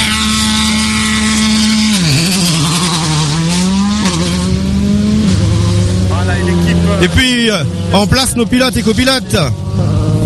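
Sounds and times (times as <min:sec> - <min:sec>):
rally car engine revving hard pulling away from a rally start line: 0:00.0 - 0:10.2
speech: 0:07.0 - 0:10.0.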